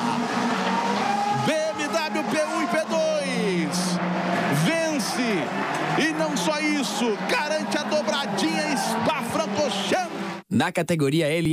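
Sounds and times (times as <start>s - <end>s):
BMW race car engine howling at high revs through quick gear changes: 0.0s - 10.4s
speech: 10.6s - 11.5s.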